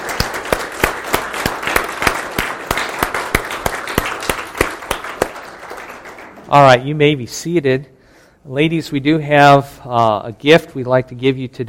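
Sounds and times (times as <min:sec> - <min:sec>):
sharp claps near the front: 0:00.0 - 0:06.7
audience applauding: 0:00.0 - 0:06.8
speech: 0:06.5 - 0:11.6.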